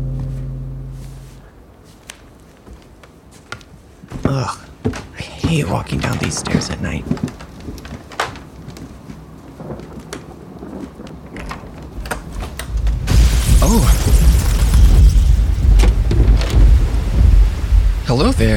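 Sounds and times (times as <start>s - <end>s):
steady rain pattering at night: 1.6s - 18.5s
speech: 5.5s - 7.3s, 18.1s - 18.5s
deep loud roll of thunder: 5.8s - 18.5s.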